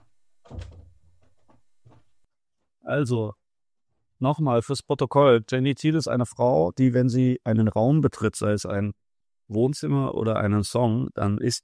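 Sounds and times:
door pushed shut with a solid low thunk: 0:00.4 - 0:02.1
speech: 0:02.9 - 0:03.4, 0:04.2 - 0:11.6.

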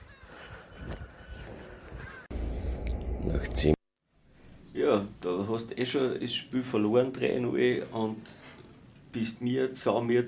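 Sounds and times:
seagulls screeching and calling at dawn in Glasgow: 0:01.9 - 0:02.3
steady low outdoor city rumble in Glasgow: 0:02.3 - 0:03.8
speech: 0:03.3 - 0:03.8, 0:04.9 - 0:08.5, 0:09.2 - 0:10.2.

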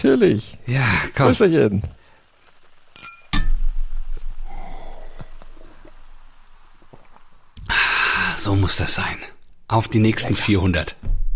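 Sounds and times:
speech: 0:00.0 - 0:02.0, 0:08.4 - 0:11.2
rustling: 0:00.0 - 0:09.7
glass bottles clinking: 0:03.0 - 0:03.6.

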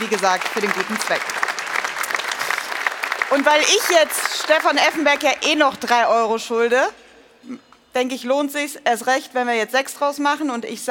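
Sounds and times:
speech: 0:00.0 - 0:01.6, 0:03.3 - 0:10.9
crowd applauding: 0:00.0 - 0:06.0.

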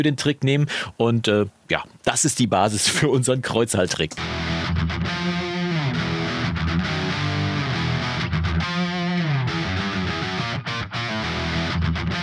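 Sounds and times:
speech: 0:00.0 - 0:05.3
two Telecaster electric guitars playing slightly distorted chords and riffs: 0:04.2 - 0:12.2.

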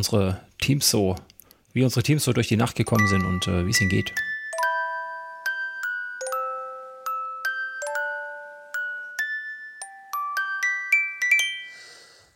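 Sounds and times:
speech: 0:00.0 - 0:04.3
hotel room alarm clock playing a bright chiming electronic melody: 0:03.0 - 0:12.0.

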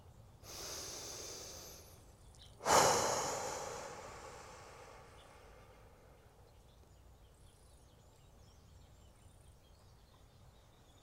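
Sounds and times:
deep breath in and out: 0:00.4 - 0:06.4.

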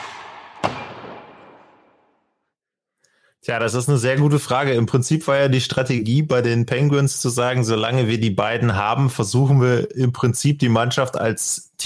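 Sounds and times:
sharp loud shot-like bang with tail: 0:00.0 - 0:02.0
speech: 0:03.4 - 0:11.8.

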